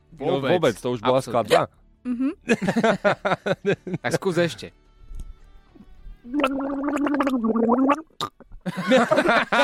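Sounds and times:
speech: 0:00.2 - 0:04.8, 0:06.2 - 0:09.6
laughter: 0:02.5 - 0:04.2, 0:08.7 - 0:09.6
person gargling: 0:06.3 - 0:08.6.

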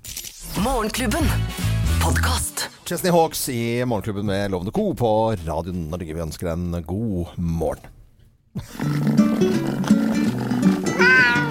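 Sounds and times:
speech: 0:00.6 - 0:10.2
cat meowing: 0:10.8 - 0:11.4.

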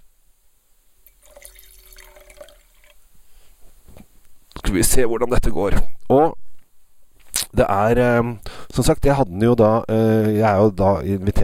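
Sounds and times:
faint drips: 0:01.0 - 0:03.0
wine pouring into a glass: 0:01.0 - 0:03.0
speech: 0:04.7 - 0:06.4, 0:07.6 - 0:11.4.

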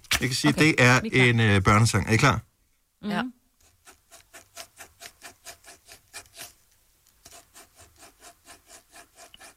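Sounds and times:
speech: 0:00.2 - 0:03.4
pen scratching rhythmically across paper drawing: 0:03.6 - 0:06.6, 0:07.2 - 0:09.5.

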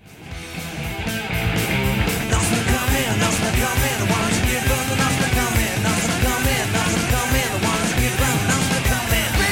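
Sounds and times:
distorted guitars in a late-1970s punk band song: 0:00.0 - 0:09.5
pounding drums in a late-1970s punk band song: 0:01.5 - 0:09.5
punk vocalist shouting vocals: 0:09.2 - 0:09.5.

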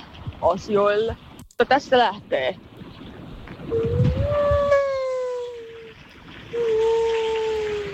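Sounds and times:
low rumble of traffic: 0:00.0 - 0:07.9
speech: 0:00.4 - 0:02.7, 0:03.7 - 0:04.0
person imitating a humpback whale while walking outdoors: 0:03.7 - 0:07.9.

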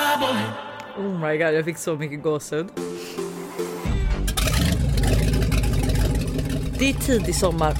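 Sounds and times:
speech: 0:00.2 - 0:03.2, 0:06.8 - 0:07.7
motorboat engine starting and roaring with a rough churning drone: 0:04.0 - 0:07.7
splashing water from a motorboat: 0:04.3 - 0:07.7.

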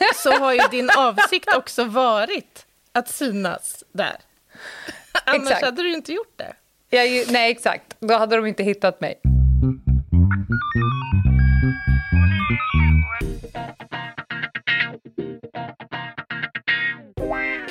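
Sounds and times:
laughter: 0:00.0 - 0:01.6
speech: 0:00.2 - 0:10.6
electronic phone ringtone with bouncy melodic tune: 0:10.6 - 0:13.2.

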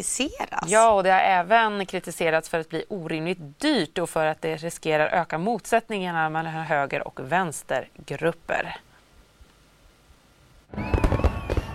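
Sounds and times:
speech: 0:00.0 - 0:08.9, 0:10.7 - 0:11.2
fireworks exploding in booming crackling bursts: 0:10.7 - 0:11.7.

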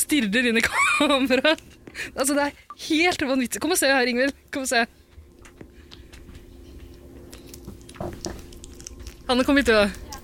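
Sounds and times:
speech: 0:00.0 - 0:05.0, 0:09.3 - 0:10.0
bat pup chewing and biting a banana: 0:05.0 - 0:10.2.

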